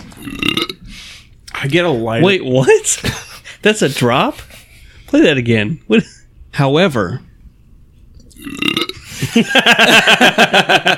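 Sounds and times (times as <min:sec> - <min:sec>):
person burping into the microphone: 0:00.2 - 0:00.8, 0:08.3 - 0:09.1
speech: 0:01.6 - 0:07.3, 0:08.4 - 0:08.7, 0:09.3 - 0:10.9
laughter: 0:09.0 - 0:10.9.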